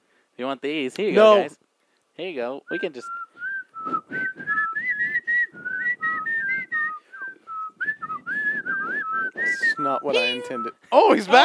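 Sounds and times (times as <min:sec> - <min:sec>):
speech: 0:00.4 - 0:01.6, 0:02.2 - 0:03.2, 0:09.8 - 0:11.4
small hand-held whistles tooting: 0:02.8 - 0:10.8.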